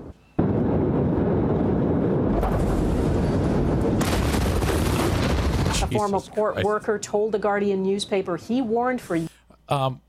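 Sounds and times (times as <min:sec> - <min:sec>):
massive warehouse explosion after fireworks: 0:00.4 - 0:06.1
speech: 0:05.9 - 0:10.0.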